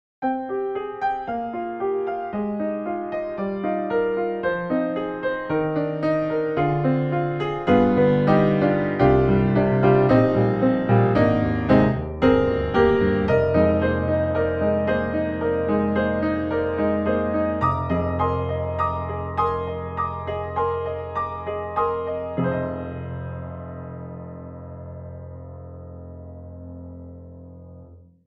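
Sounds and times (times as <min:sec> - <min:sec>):
classical piece on a virtual grand piano: 0:00.2 - 0:28.2.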